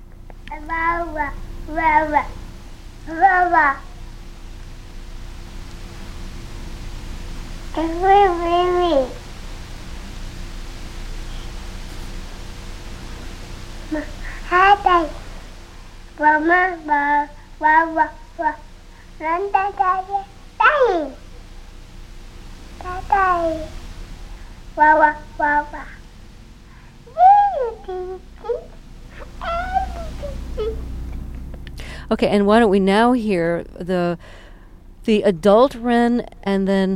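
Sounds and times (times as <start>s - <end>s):
toddler of a year and a half babbling: 0.5s - 2.4s, 3.1s - 4.0s, 7.8s - 9.2s, 13.9s - 15.2s, 16.2s - 21.2s, 22.8s - 23.7s, 24.8s - 26.0s, 27.1s - 30.8s
speech: 0.7s - 2.4s, 3.1s - 3.9s, 7.8s - 9.2s, 13.9s - 15.2s, 16.2s - 21.2s, 22.9s - 23.8s, 24.8s - 26.0s, 27.6s - 28.7s, 29.4s - 30.9s, 32.1s - 34.4s, 35.1s - 36.9s.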